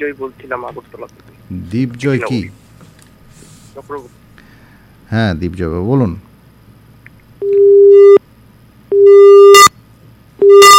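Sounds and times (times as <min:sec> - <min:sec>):
speech: 0:00.0 - 0:02.6, 0:03.8 - 0:04.2, 0:05.1 - 0:06.3
telephone busy tone beeps after a call drops: 0:07.4 - 0:08.2, 0:08.9 - 0:09.7, 0:10.4 - 0:10.7.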